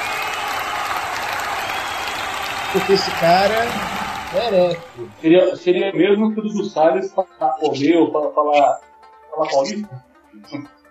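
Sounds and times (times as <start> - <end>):
audience applause: 0.0 - 5.3
speech: 2.7 - 10.8.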